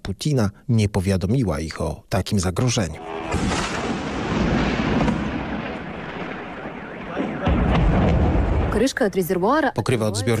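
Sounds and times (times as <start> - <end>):
speech: 0.1 - 3.6, 8.8 - 10.3
sharp blasts at an oil refinery: 3.0 - 9.1
loud explosions rumbling at an oil refinery: 3.2 - 9.2.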